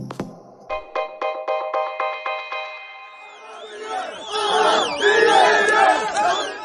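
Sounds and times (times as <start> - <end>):
protest crowd shouting and cheering outdoors in Lebanon: 2.4 - 6.6
protest crowd chanting in the street in Lebanon: 3.0 - 6.6.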